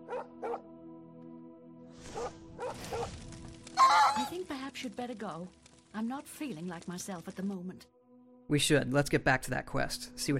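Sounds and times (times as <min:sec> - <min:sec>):
dog barking in short sharp bursts: 0:00.0 - 0:00.6, 0:02.1 - 0:03.1
speech: 0:04.3 - 0:10.3.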